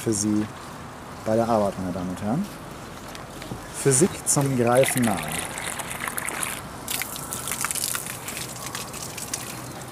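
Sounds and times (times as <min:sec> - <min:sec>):
speech: 0:00.0 - 0:02.6, 0:03.5 - 0:05.5
water pouring from a children's watering can into bowls: 0:04.6 - 0:09.9.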